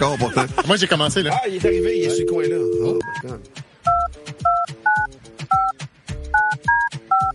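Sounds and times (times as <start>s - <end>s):
laughter: 0.0s - 0.9s
speech: 0.0s - 3.7s
touch-tone dialing of a telephone number: 1.7s - 3.2s, 3.9s - 5.8s, 6.4s - 7.3s.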